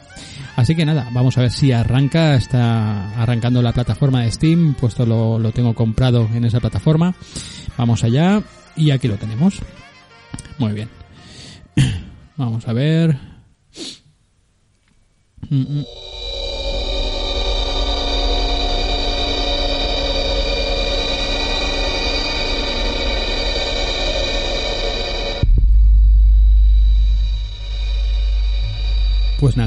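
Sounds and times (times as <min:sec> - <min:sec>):
speech: 0:00.6 - 0:09.8, 0:10.6 - 0:11.0, 0:11.8 - 0:14.0, 0:15.4 - 0:16.2, 0:29.4 - 0:29.6
dense shimmering drone of layered steady tones in a spacey game intro: 0:15.5 - 0:29.6
deep heavy low-end pulses like a huge heartbeat: 0:22.6 - 0:29.6.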